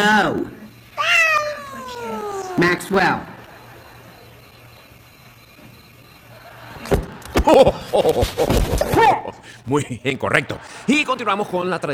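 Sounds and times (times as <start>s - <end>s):
speech: 0.0s - 0.6s, 2.6s - 3.3s, 7.4s - 11.9s
faint low hum: 0.0s - 11.9s
cat meowing: 0.9s - 3.0s
laughter: 1.2s - 11.9s.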